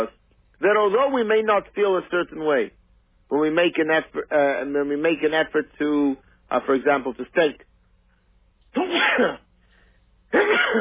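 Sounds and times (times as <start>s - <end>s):
speech: 0.0s - 7.7s, 8.7s - 9.4s, 10.3s - 10.7s
quiet hum: 0.0s - 10.7s
person sneezing loudly: 8.7s - 9.5s, 10.3s - 10.7s.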